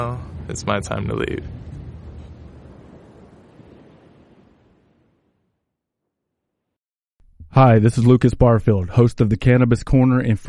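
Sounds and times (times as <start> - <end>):
speech: 0.0 - 1.7, 7.6 - 10.4
ocean surf washing onto a beach at night: 0.0 - 5.2
wind: 0.0 - 5.6, 7.7 - 10.4.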